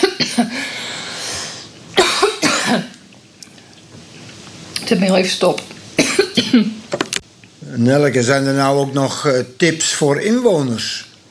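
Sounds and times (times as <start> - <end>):
dry coughing from a tickle in the throat: 0.0 - 0.6, 2.0 - 3.0, 6.0 - 6.8
speech: 4.9 - 7.0, 7.8 - 11.1.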